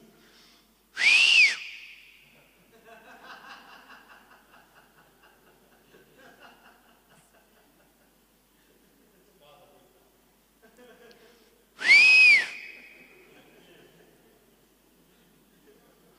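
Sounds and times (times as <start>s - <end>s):
shepherd's whistle blasts calling a stray sheep back: 1.0s - 2.4s, 11.8s - 13.3s
laughter: 2.6s - 9.2s, 10.6s - 11.5s, 12.8s - 14.7s.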